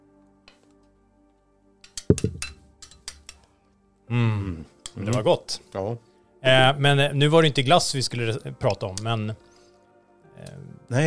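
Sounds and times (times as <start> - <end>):
dishes or utensils clinking in a toast over ice cream: 1.9 - 3.4
speech: 4.1 - 9.5, 10.4 - 11.0.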